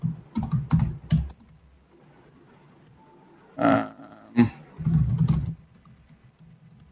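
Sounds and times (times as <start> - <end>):
typing on a computer keyboard: 0.0 - 1.6, 4.8 - 6.8.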